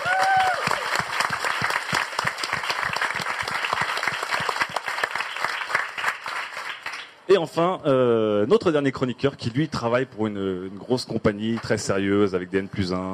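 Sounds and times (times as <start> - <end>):
audience applause: 0.0 - 7.2
speech: 7.3 - 13.1.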